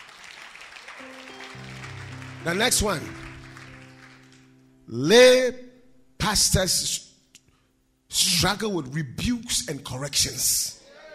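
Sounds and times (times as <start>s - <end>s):
crowd applauding: 0.0s - 4.7s
sustained musical notes from a keyboard or organ: 1.0s - 5.3s
speech: 2.4s - 3.2s, 4.9s - 5.6s, 6.2s - 7.1s, 8.1s - 10.8s.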